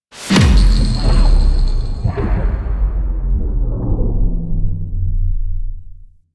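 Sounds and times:
zap attempt in vault ambience: 0.2 - 5.0
vault ambience: 0.3 - 6.2.

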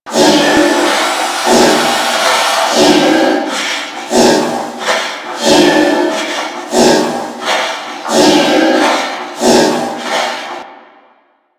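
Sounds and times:
pump loop: 0.1 - 10.6.

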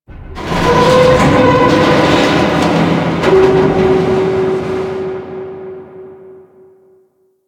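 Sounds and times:
metal groaning: 0.1 - 6.8.

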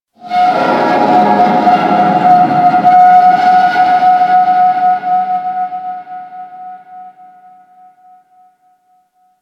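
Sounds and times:
distant metal groan: 0.2 - 5.5.

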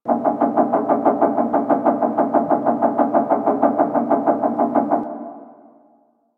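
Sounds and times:
steady ocean machine noise: 0.0 - 5.1.

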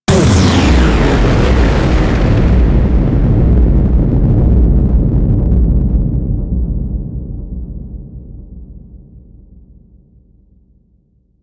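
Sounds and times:
giant space explosion: 0.1 - 9.7.

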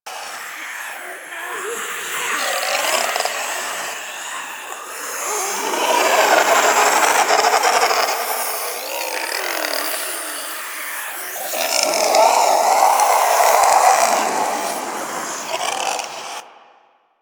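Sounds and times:
dark vocal aura drain loop: 0.1 - 16.9.

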